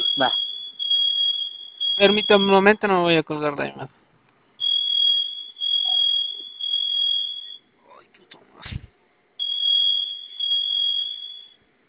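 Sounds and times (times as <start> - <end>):
shrill electronic alarm beeping: 0.0 - 2.8, 4.6 - 7.7, 9.4 - 11.6
speech: 0.2 - 0.5, 2.0 - 4.0.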